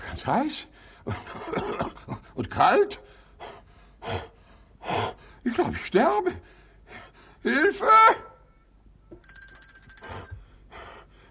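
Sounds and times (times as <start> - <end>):
speech: 0.2 - 4.3, 4.9 - 8.3
hand bell ringing: 9.2 - 10.4.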